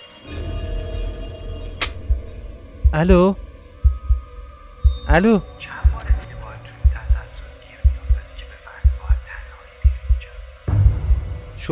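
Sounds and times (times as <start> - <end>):
home telephone ringing with metallic buzzing tone: 0.0 - 2.1
low rumble: 1.9 - 11.6
speech: 2.9 - 3.4, 5.1 - 5.7.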